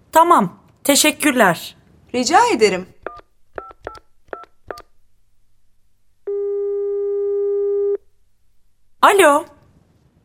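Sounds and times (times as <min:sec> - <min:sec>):
speech: 0:00.2 - 0:02.9, 0:09.1 - 0:09.6
telephone keypad dialing beeps: 0:03.0 - 0:04.8
telephone ringing tone: 0:06.2 - 0:08.0.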